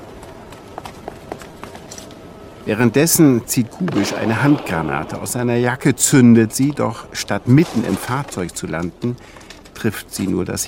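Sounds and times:
running footsteps of a man fleeing on foot: 0:00.0 - 0:02.2, 0:07.5 - 0:10.2
steady noisy background: 0:00.0 - 0:10.6
speech: 0:02.6 - 0:10.6.

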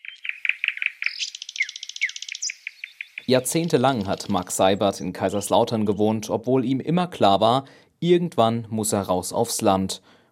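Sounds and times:
bird trilling: 0:00.0 - 0:05.6
birds chirping in quick bright bursts: 0:00.0 - 0:06.5
speech: 0:03.2 - 0:10.2.

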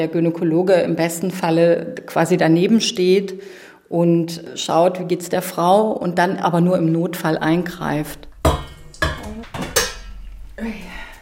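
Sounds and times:
speech: 0:00.0 - 0:08.3
pots and pans clattering in a kitchen while cooking: 0:08.3 - 0:10.4.

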